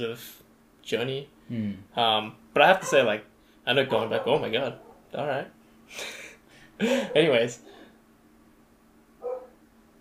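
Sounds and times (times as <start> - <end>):
speech: 0.0 - 6.2, 6.8 - 7.7
quiet hum: 0.0 - 9.9
neighbor's dog barking: 2.8 - 3.1, 4.1 - 5.1, 7.0 - 7.3, 9.2 - 9.6.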